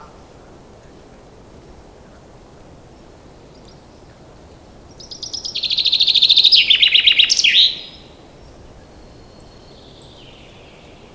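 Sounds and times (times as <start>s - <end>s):
common chaffinch Fringilla coelebs singing: 3.4s - 11.1s.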